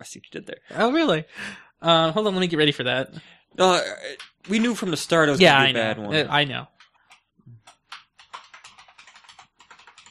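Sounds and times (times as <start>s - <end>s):
speech: 0.0s - 6.7s
typing on a computer keyboard to log in to an email account: 4.2s - 4.9s, 6.7s - 10.1s.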